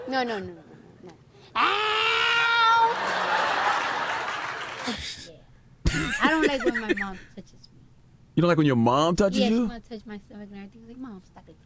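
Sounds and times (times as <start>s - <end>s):
speech: 0.1s - 2.2s, 4.9s - 5.3s, 5.9s - 7.7s, 8.4s - 11.6s
voice imitating a high-pitched cat meow: 1.6s - 2.9s
laughter: 2.7s - 5.2s, 5.9s - 7.3s.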